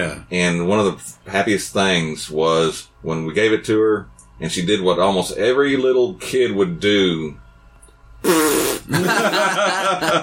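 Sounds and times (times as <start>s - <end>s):
speech: 0.0s - 7.4s, 8.2s - 10.2s
little girl blowing a fart noise into a toy microphone: 8.2s - 9.0s
laughter: 8.9s - 10.2s.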